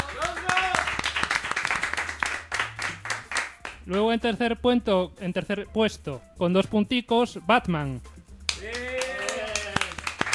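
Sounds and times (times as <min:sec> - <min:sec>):
applause during announcement of final standings in a season-ending contest: 0:00.0 - 0:03.8, 0:08.5 - 0:10.3
speech: 0:03.9 - 0:08.8.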